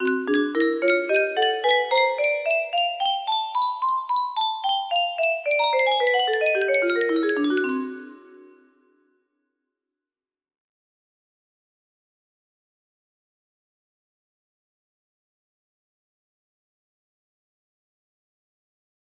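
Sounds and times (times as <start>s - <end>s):
musical scale: 0.0s - 8.7s.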